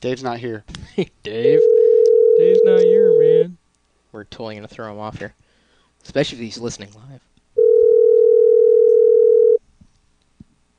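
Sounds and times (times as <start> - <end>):
speech: 0.0 - 1.8, 2.4 - 5.4, 6.0 - 7.3
telephone tone while a call is being placed: 1.6 - 3.4, 7.6 - 9.6.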